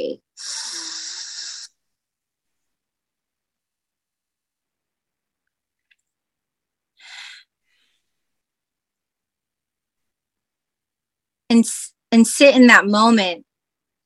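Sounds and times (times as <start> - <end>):
deep breath drawn in during a guided breathing exercise: 7.0 - 8.3
speech: 11.5 - 13.5.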